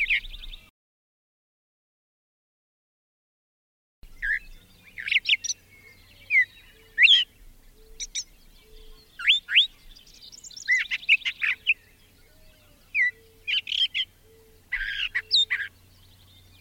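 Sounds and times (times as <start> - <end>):
brown thrasher song of varied whistled and slurred phrases: 0.0 - 0.7, 4.0 - 16.6.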